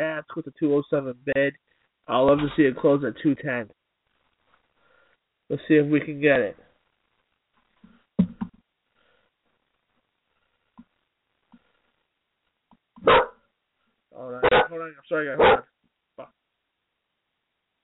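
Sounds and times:
speech: 0:00.0 - 0:03.8, 0:05.5 - 0:06.6, 0:14.2 - 0:16.3
dog barking: 0:13.0 - 0:13.4, 0:14.4 - 0:14.8, 0:15.4 - 0:15.7.

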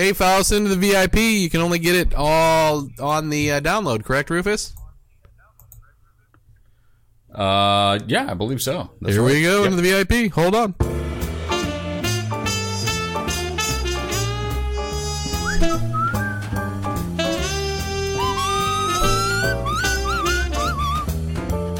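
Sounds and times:
speech: 0:00.0 - 0:04.8, 0:07.3 - 0:10.9
full steady music track: 0:10.8 - 0:21.7
person whistling a wavering lead melody: 0:15.4 - 0:16.7, 0:18.2 - 0:21.2.

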